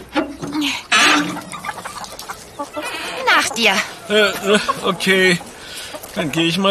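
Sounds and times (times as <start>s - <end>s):
chickens clucking and squawking agitatedly in enclosure: 0.0s - 6.6s
speech: 3.5s - 5.5s, 6.2s - 6.6s.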